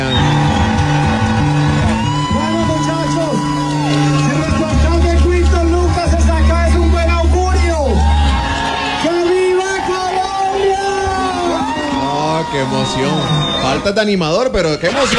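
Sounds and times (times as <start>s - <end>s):
pounding music thumping: 0.0s - 9.6s
loud crowd partying at a hotel: 0.0s - 15.1s
man yelling excitedly: 2.1s - 8.2s, 8.9s - 13.2s
speech: 13.9s - 15.1s.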